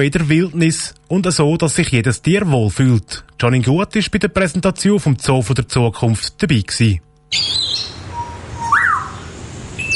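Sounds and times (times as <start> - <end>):
speech: 0.0 - 8.0
grey parrot chirping at a zoo: 7.3 - 9.2, 9.8 - 9.9.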